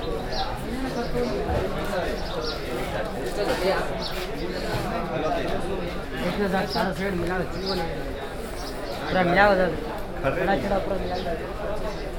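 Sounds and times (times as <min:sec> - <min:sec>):
crowded market voices murmuring in Bangalore: 0:00.0 - 0:12.1.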